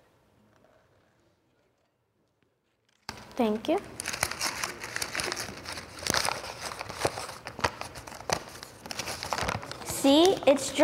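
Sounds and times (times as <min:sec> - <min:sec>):
speech: 0:03.4 - 0:04.0, 0:10.0 - 0:10.8
dry paper crinkling as pulled out of a cup: 0:04.0 - 0:10.8.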